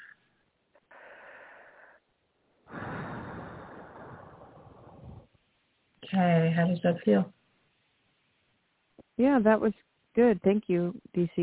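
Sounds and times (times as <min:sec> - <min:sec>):
deep breath: 0:00.8 - 0:05.3
speech: 0:06.2 - 0:07.4, 0:09.2 - 0:11.4.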